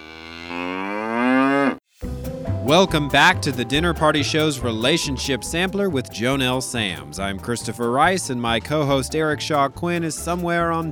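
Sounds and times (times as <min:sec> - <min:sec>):
cow mooing: 0:00.0 - 0:01.8
speech: 0:02.7 - 0:10.8.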